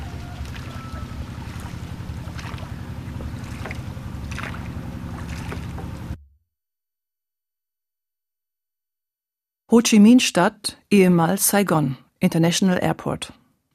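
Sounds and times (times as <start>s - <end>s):
water noise on open water: 0.0s - 6.2s
boat engine rumbling as it pulls away on open water: 0.0s - 6.4s
speech: 9.7s - 13.4s.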